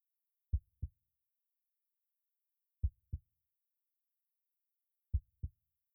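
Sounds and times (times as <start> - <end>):
person's heartbeat heard through the chest during a hug: 2.8 - 3.2, 5.1 - 5.5.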